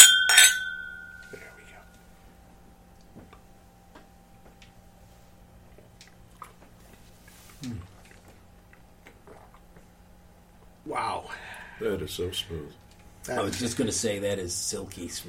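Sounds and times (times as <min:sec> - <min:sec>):
glasses clinking in a toast: 0:00.0 - 0:01.6
speech: 0:11.2 - 0:15.2.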